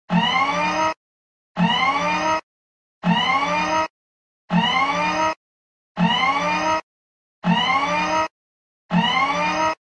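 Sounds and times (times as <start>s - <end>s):
robot alarm ringtone: 0.1s - 1.0s, 1.6s - 2.4s, 3.0s - 3.9s, 4.5s - 5.4s, 6.0s - 8.3s, 8.9s - 9.8s.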